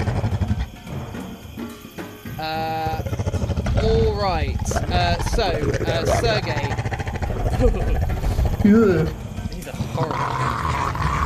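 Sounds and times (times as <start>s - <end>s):
wolves growling: 0.0s - 1.0s, 2.4s - 11.2s
speech: 2.4s - 2.8s, 3.8s - 6.8s, 7.6s - 9.2s
voice-like murmur: 2.4s - 11.2s
wolf howling: 2.8s - 11.2s.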